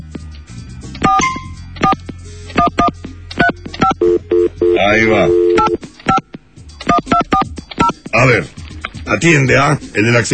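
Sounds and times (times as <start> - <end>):
telephone keypad tones as a number is dialed: 1.1 - 2.0, 2.6 - 6.2
speech: 4.8 - 5.4, 8.2 - 10.3.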